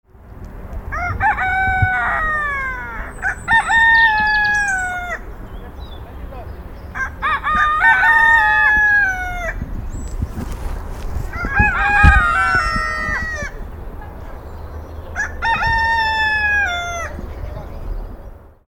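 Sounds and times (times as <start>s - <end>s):
two roosters crowing in duet: 0.8s - 17.6s.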